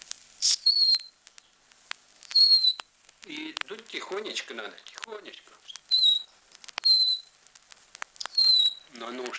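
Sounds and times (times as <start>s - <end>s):
bird-call whistle imitating a nightingale: 0.4s - 1.2s, 2.3s - 2.9s, 5.8s - 7.3s, 8.3s - 8.9s
speech: 3.3s - 5.7s, 8.9s - 9.3s.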